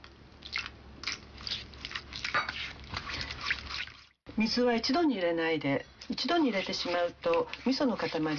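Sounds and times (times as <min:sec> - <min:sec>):
wet squelchy mixing of miso paste with water: 0:00.3 - 0:05.0, 0:05.9 - 0:08.3
water poured into miso paste: 0:01.4 - 0:04.2
person talking: 0:04.3 - 0:08.3.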